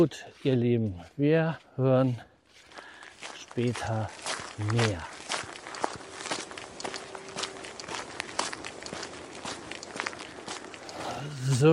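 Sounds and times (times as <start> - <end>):
speech: 0.0 - 2.3, 3.6 - 5.1, 11.5 - 11.7
footsteps running through fresh snow: 2.4 - 11.7.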